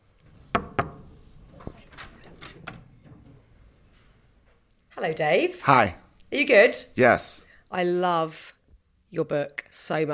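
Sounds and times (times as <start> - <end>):
knocking on a hotel suite door: 0.5 - 1.0
speech: 5.0 - 10.1.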